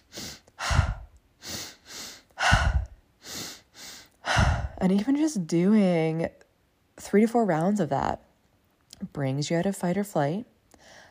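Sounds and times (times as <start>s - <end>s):
deep breathing in through the belly and out: 0.0s - 4.8s
speech: 4.8s - 6.4s, 7.0s - 8.3s, 9.0s - 10.5s.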